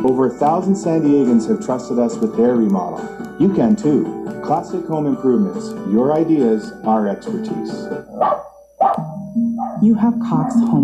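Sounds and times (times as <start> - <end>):
speech: 0.1 - 9.1, 9.8 - 10.8
dog barking: 8.1 - 9.0, 9.6 - 10.7.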